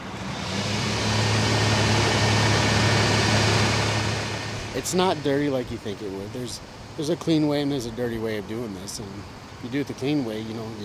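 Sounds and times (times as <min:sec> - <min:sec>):
pump running to pump down a cesspool: 0:00.0 - 0:07.0
speech: 0:04.8 - 0:10.8.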